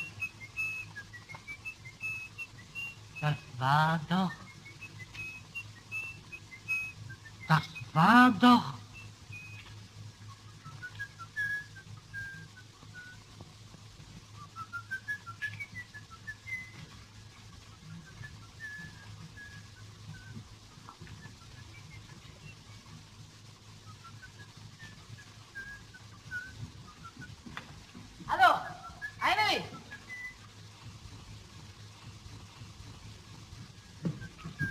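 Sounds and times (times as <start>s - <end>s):
person whistling a melodic tune: 0.0s - 9.7s, 10.6s - 13.3s, 14.4s - 17.0s, 17.8s - 20.4s, 23.8s - 27.5s, 28.4s - 30.5s, 34.2s - 34.6s
speech: 3.2s - 4.4s, 7.5s - 8.8s.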